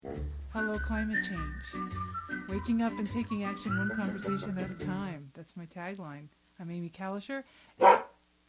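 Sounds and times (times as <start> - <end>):
speech: 0.6 - 8.0
dog bark: 7.8 - 8.2.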